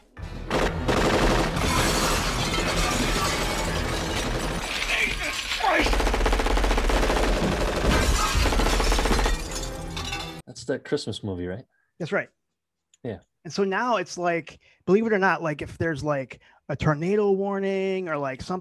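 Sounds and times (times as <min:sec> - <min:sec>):
automatic gunfire: 0:00.5 - 0:02.2, 0:04.9 - 0:09.3
glass shattering: 0:01.5 - 0:05.9, 0:07.9 - 0:10.4
speech: 0:10.7 - 0:12.4, 0:13.0 - 0:18.5.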